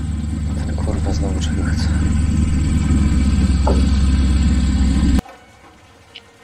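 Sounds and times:
car engine approaching from the distance: 0:00.0 - 0:05.2.

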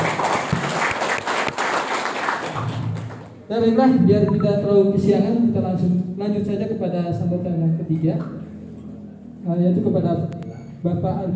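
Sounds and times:
audience applauding: 0:00.0 - 0:03.3
speech: 0:03.5 - 0:08.4, 0:09.4 - 0:11.3.

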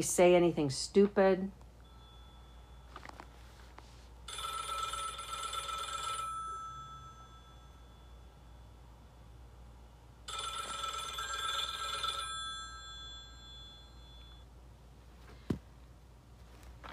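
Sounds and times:
speech: 0:00.0 - 0:01.6
quiet hum: 0:00.0 - 0:16.9
telephone ringing with trilling electronic bursts: 0:01.8 - 0:03.4, 0:04.2 - 0:08.8, 0:10.2 - 0:14.5.

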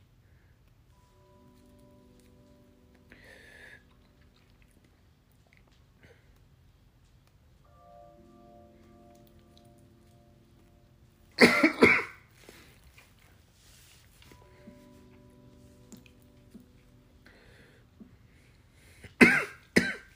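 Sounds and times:
faint hum: 0:00.0 - 0:20.1
harsh coughing fit after smoking: 0:11.4 - 0:12.2, 0:19.2 - 0:20.1.

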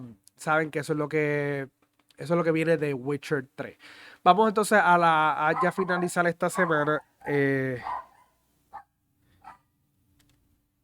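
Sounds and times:
speech: 0:00.0 - 0:08.0
dog barking: 0:05.4 - 0:09.7.

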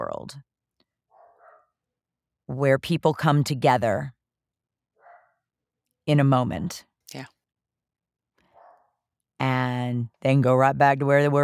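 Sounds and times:
speech: 0:00.0 - 0:00.5, 0:02.5 - 0:04.2, 0:06.1 - 0:07.3, 0:09.4 - 0:11.4
dog barking: 0:01.1 - 0:01.7, 0:05.0 - 0:05.4, 0:08.5 - 0:08.9.

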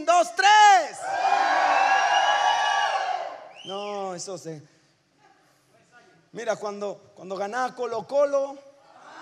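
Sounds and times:
large crowd shouting a cry of joy and whooping: 0:01.0 - 0:03.6
speech: 0:03.7 - 0:04.8, 0:06.3 - 0:08.7.

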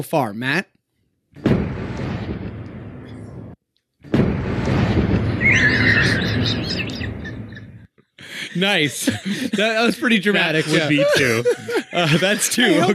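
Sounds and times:
speech: 0:00.0 - 0:00.7, 0:08.5 - 0:12.9
cannon booms: 0:01.4 - 0:07.6
high chirping tones: 0:05.4 - 0:07.8
laughter: 0:05.7 - 0:12.9.

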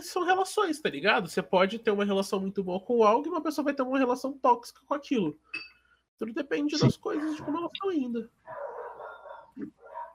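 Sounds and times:
speech: 0:00.0 - 0:08.6, 0:09.6 - 0:09.8
dogs barking and yelping: 0:07.2 - 0:07.7, 0:08.4 - 0:10.1.

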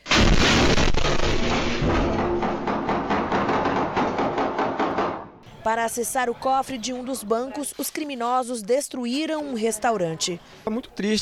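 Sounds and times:
rapid sharp gunshots: 0:00.0 - 0:03.8
loud explosion: 0:00.0 - 0:04.4
speech: 0:05.7 - 0:11.2.

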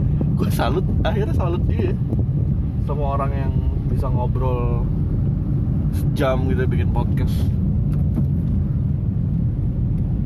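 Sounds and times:
rumble from inside a car moving on a slow road: 0:00.0 - 0:10.2
speech: 0:00.4 - 0:05.0, 0:05.9 - 0:07.6.

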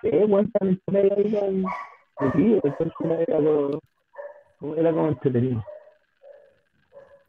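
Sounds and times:
speech: 0:00.0 - 0:03.9, 0:04.6 - 0:05.7
female dog yelp: 0:01.6 - 0:03.0, 0:04.2 - 0:04.5, 0:05.6 - 0:07.2
female dog barking and yowling: 0:01.6 - 0:03.2, 0:04.1 - 0:04.6, 0:05.6 - 0:07.2.

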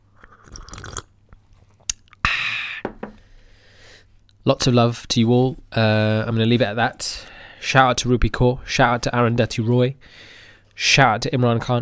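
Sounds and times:
person sipping coffee: 0:00.1 - 0:03.2
speech: 0:04.5 - 0:11.8.

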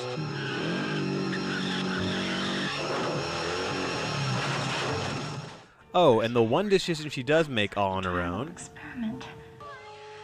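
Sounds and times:
motorcycle engine roaring and revving: 0:00.0 - 0:05.7
speech: 0:06.0 - 0:09.4.

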